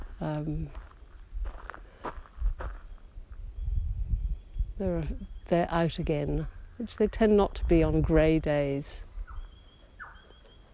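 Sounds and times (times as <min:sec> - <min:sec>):
footsteps crunching while walking outdoors: 0:00.0 - 0:03.0
speech: 0:00.2 - 0:00.9, 0:04.8 - 0:09.1.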